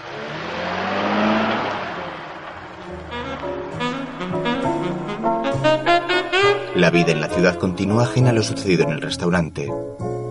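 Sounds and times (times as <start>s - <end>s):
taxi engine accelerating on a city street: 0.0s - 6.8s
speech: 6.8s - 10.1s.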